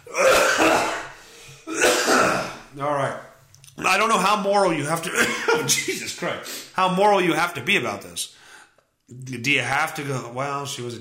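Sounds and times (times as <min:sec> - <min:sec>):
person coughing: 0:00.0 - 0:02.7, 0:05.1 - 0:05.9
speech: 0:02.8 - 0:03.3, 0:03.9 - 0:08.4, 0:09.1 - 0:11.0.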